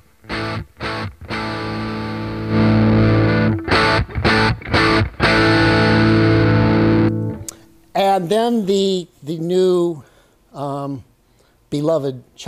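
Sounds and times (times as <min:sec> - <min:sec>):
electric guitar chords through an overdrive pedal: 0:00.0 - 0:07.7
speech: 0:08.2 - 0:11.1, 0:11.7 - 0:12.4.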